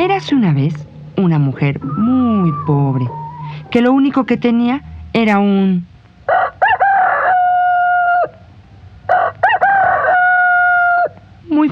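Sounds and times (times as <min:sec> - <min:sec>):
speech: 0:00.1 - 0:05.9
rooster crowing: 0:01.8 - 0:05.0, 0:06.3 - 0:08.4, 0:09.0 - 0:11.2.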